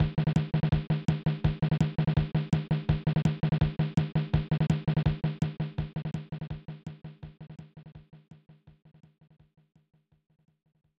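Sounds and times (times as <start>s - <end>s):
1994 SNES drumbeat: 0.0s - 8.1s.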